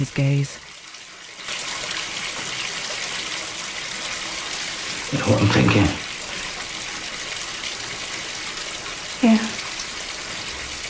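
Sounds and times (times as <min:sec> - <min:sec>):
speech: 0:00.0 - 0:00.7, 0:05.1 - 0:06.0
tap water pouring into a bathtub: 0:00.0 - 0:10.8.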